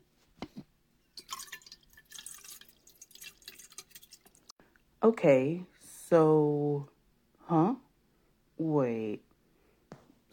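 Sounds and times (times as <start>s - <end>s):
water trickling and splashing from a tap into a glass: 1.1s - 4.5s
speech: 5.0s - 6.9s, 7.5s - 7.8s, 8.6s - 9.3s.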